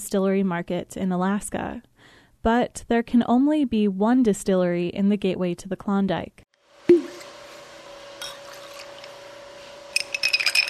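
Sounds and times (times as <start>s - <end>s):
speech: 0.1s - 6.5s
glass clinking as a cocktail is stirred at a distillery: 8.2s - 8.9s, 10.0s - 10.6s.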